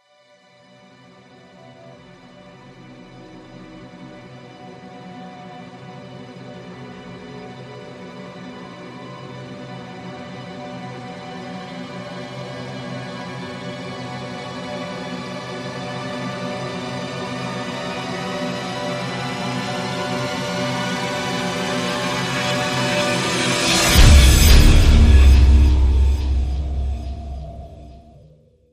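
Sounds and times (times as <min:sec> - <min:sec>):
trailer strings rising hit: 0:22.1 - 0:28.2.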